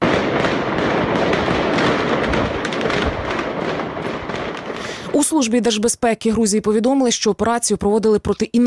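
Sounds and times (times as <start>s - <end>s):
rapid gunfire by terrorism suspects during an operation at an apartment building in Georgia: 0.0s - 5.4s
hand grenade explosions during an operation at an apartment building in Georgia: 0.0s - 5.9s
speech: 5.4s - 8.6s.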